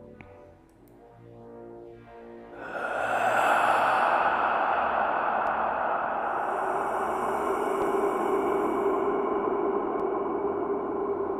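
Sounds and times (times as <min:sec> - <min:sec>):
eerie breathing: 0:02.6 - 0:11.3.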